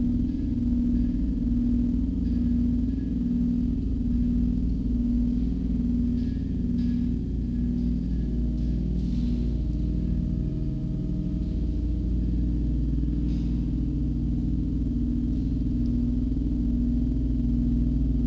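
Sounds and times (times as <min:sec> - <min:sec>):
fabrication room ambience: 0:00.0 - 0:18.2.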